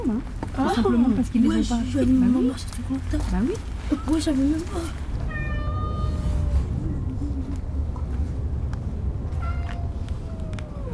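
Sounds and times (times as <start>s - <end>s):
speech: 0.0s - 5.0s
steady rumbling background: 4.3s - 10.9s
cat meowing: 5.2s - 6.7s, 9.3s - 10.9s.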